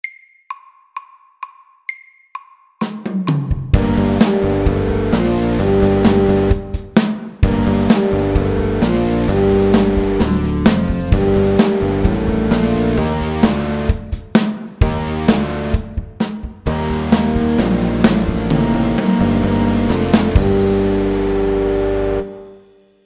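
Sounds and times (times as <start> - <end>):
loud metal rock music: 3.8 - 16.0, 16.7 - 22.3.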